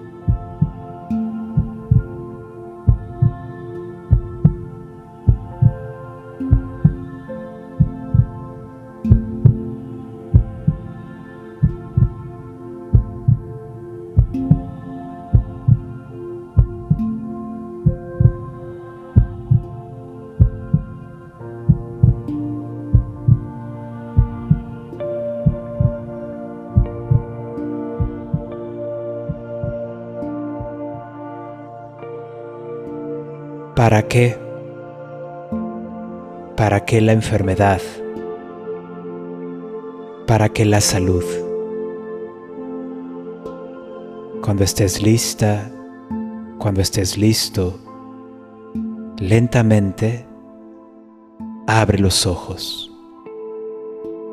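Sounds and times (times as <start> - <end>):
soft humming drone: 0.0 - 49.4
heartbeat thumping: 0.3 - 2.2, 2.9 - 3.5, 4.1 - 5.8, 6.5 - 7.1, 7.8 - 8.5, 9.1 - 10.9, 11.6 - 12.2, 12.9 - 13.6, 14.2 - 15.9, 16.6 - 17.2, 17.8 - 18.6, 19.2 - 19.8, 20.4 - 21.1, 21.7 - 22.3, 22.9 - 23.5, 24.2 - 27.4, 28.0 - 28.6
speech: 33.8 - 34.4, 36.6 - 38.0, 40.3 - 41.4, 44.5 - 45.8, 46.6 - 47.9, 49.2 - 50.3, 51.7 - 52.9.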